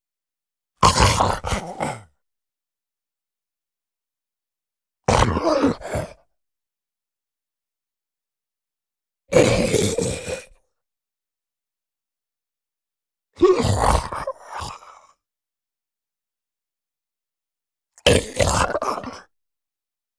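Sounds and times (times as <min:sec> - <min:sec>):
huge male zombie dying agony groan: 0:05.1 - 0:06.2, 0:09.4 - 0:10.5, 0:13.4 - 0:14.8, 0:18.1 - 0:19.3.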